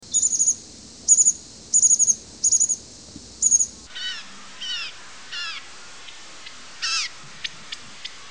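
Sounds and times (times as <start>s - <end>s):
birds: 0.0s - 2.8s, 3.4s - 5.7s.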